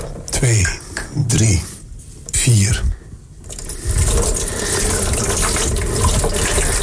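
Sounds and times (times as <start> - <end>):
speech: 0.4 - 1.7, 2.5 - 2.9
water poured over a photographic plate: 3.4 - 6.8.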